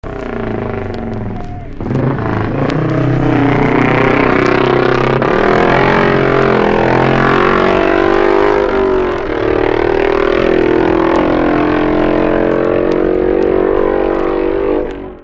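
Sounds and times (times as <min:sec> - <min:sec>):
Manx Norton motorcycle engine: 0:00.0 - 0:15.2.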